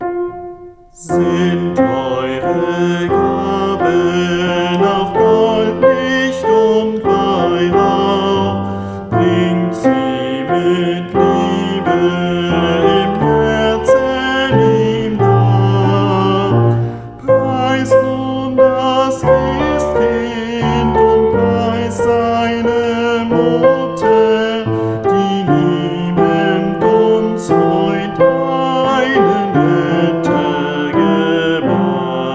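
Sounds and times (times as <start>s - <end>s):
soprano singing a lullaby as Advent music: 0.8s - 32.3s.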